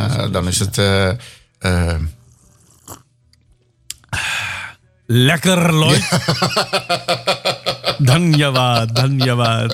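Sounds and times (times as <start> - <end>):
speech: 0.2 - 2.2, 5.1 - 9.7
loud slurping sip of hot coffee: 2.2 - 3.2
laughter: 5.9 - 9.7.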